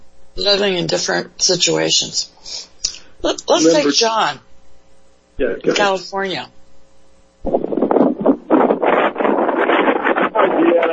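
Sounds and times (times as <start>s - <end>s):
speech: 0.4s - 4.4s, 5.4s - 6.6s
wind gusts buffeting an outdoor phone microphone: 7.4s - 10.9s.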